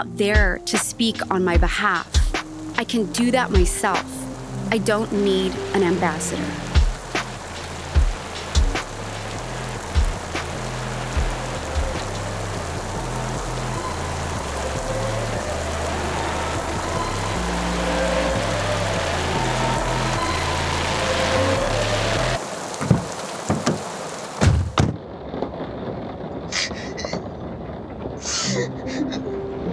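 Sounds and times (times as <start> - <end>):
speech: 0.0 - 2.2, 2.8 - 6.7
steady dense rain hissing: 0.8 - 29.6
scattered knocks and drips: 6.7 - 9.2, 9.8 - 14.4, 22.8 - 25.0.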